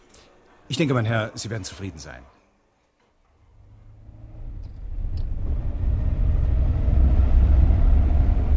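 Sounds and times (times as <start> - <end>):
speech: 0.7 - 2.4
car being driven off: 3.6 - 8.5.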